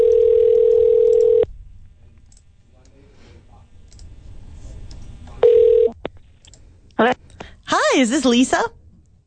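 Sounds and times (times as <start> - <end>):
loud steady telephone dial tone: 0.0 - 1.4
speech: 8.0 - 8.8.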